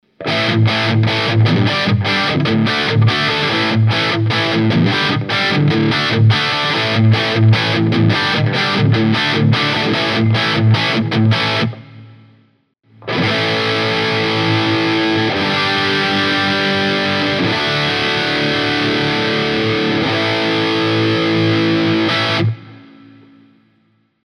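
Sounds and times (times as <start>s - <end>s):
dirty electric guitar with humbuckers: 0.0s - 23.9s.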